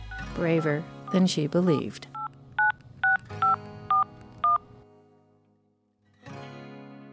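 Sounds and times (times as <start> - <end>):
speech: 0.4 - 2.1
telephone keypad dialing tones: 1.8 - 4.6.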